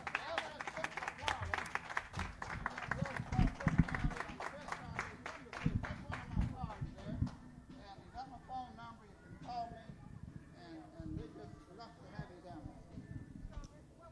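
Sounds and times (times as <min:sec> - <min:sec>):
room full of people applauding: 0:00.0 - 0:06.6
murmuring voices: 0:00.0 - 0:14.0.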